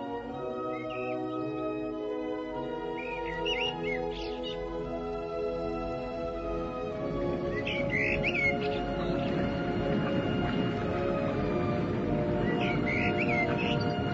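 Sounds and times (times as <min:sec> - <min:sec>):
nightingale singing: 0:00.6 - 0:01.5, 0:02.8 - 0:04.8, 0:07.5 - 0:11.7, 0:12.3 - 0:14.1
steady low humming drone: 0:02.4 - 0:14.1
rushing water-like wash: 0:02.5 - 0:14.1.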